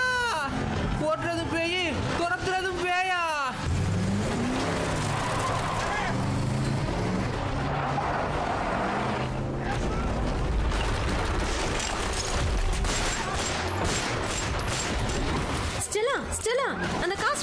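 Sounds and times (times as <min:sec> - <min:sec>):
engines of four or five cars speeding in a chase: 0:00.0 - 0:17.4
tire skids: 0:03.6 - 0:10.4
speech: 0:16.5 - 0:17.4.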